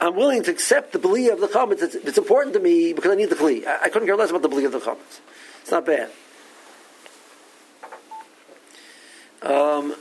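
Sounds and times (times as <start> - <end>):
speech: 0.0 - 6.3, 9.4 - 9.9
short electronic phone beeps: 8.1 - 8.3.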